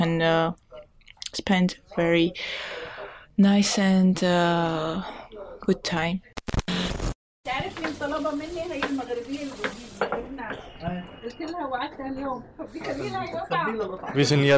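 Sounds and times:
speech: 0:00.0 - 0:00.6, 0:01.3 - 0:02.8, 0:03.4 - 0:06.8, 0:08.0 - 0:10.2, 0:11.3 - 0:14.5
macaroni with onion, vegetables and minced meat sizzling in a kitchen pan: 0:07.5 - 0:10.4.

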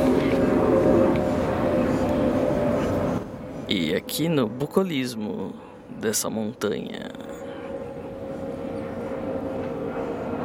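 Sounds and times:
airplane passing overhead above a mountain: 0:00.0 - 0:10.4
speech: 0:03.7 - 0:07.3.

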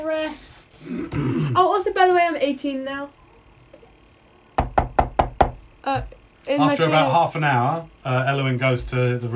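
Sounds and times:
speech: 0:00.0 - 0:03.2, 0:05.8 - 0:09.3
firm knocks on a wooden chamber door: 0:04.6 - 0:05.7.

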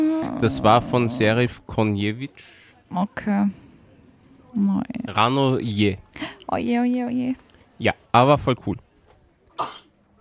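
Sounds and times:
speech: 0:00.0 - 0:03.6, 0:04.5 - 0:08.9, 0:09.6 - 0:09.8
person sneezing: 0:09.6 - 0:09.9.

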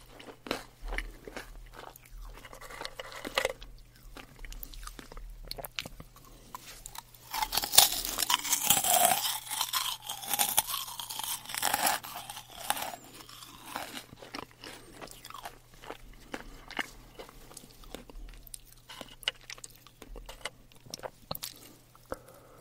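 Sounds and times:
crisp meringue cookies being bitten and chewed: 0:00.0 - 0:22.5
steady low hum: 0:00.0 - 0:22.5.

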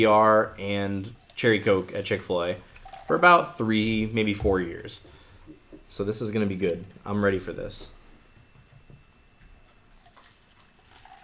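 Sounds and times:
speech: 0:00.0 - 0:05.2, 0:05.9 - 0:08.0
fizzy drink poured into a glass: 0:02.7 - 0:03.2, 0:10.0 - 0:11.2.

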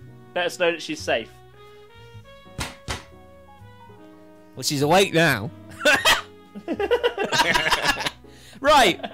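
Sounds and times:
speech: 0:00.4 - 0:01.4, 0:04.6 - 0:06.0, 0:06.6 - 0:09.1
solid dull wooden knocks: 0:02.5 - 0:03.2
laughter: 0:05.7 - 0:08.2, 0:08.8 - 0:09.1.

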